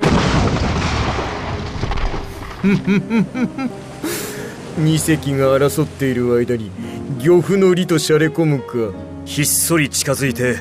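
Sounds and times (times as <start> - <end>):
warship main guns firing a barrage: 0.0 - 2.5
laughter: 2.6 - 4.2
speech: 2.6 - 4.2, 4.8 - 10.6.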